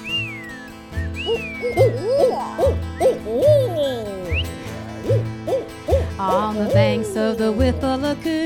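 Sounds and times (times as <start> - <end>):
people imitating swooping, whistly bird calls: 0.0 - 6.2
people imitating owl-like hoots to open a song: 1.1 - 7.7
speech: 1.3 - 2.7, 6.5 - 8.4.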